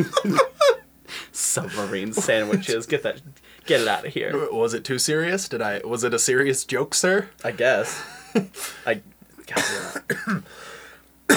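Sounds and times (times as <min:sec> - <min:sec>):
speech: 0:00.0 - 0:00.5, 0:01.4 - 0:10.7
laughter: 0:00.0 - 0:00.8, 0:01.4 - 0:04.6, 0:07.5 - 0:09.0
throat-clearing rasp: 0:00.0 - 0:02.8, 0:07.9 - 0:10.6
harsh dry coughs: 0:00.0 - 0:02.9, 0:07.8 - 0:10.7.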